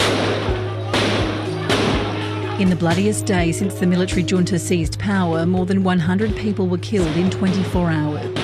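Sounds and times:
gunshot cracks: 0.0s - 2.1s
speech: 2.6s - 8.4s.

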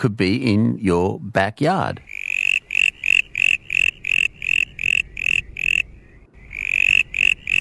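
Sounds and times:
speech: 0.0s - 2.1s
brown tree frog call: 2.0s - 7.5s.

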